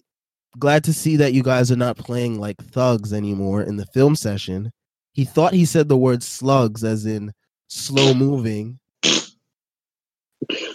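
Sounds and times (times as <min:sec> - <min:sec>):
speech: 0:00.6 - 0:08.8, 0:10.4 - 0:10.7
person sneezing: 0:09.0 - 0:09.4, 0:10.4 - 0:10.7.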